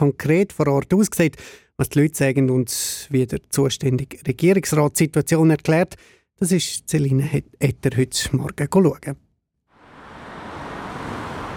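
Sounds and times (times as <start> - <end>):
speech: 0.0 - 9.2
cars passing on a village street: 9.7 - 11.5.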